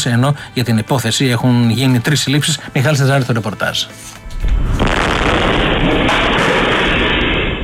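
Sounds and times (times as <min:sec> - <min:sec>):
speech: 0:00.0 - 0:04.5
factory explosion: 0:04.2 - 0:07.6
loud roar and rumble: 0:04.2 - 0:07.6.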